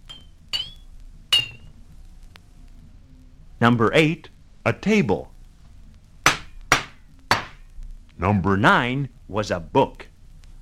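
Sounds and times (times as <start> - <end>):
empty glass bottle being struck: 0.0 - 1.7
speech: 3.6 - 5.3, 8.2 - 10.1.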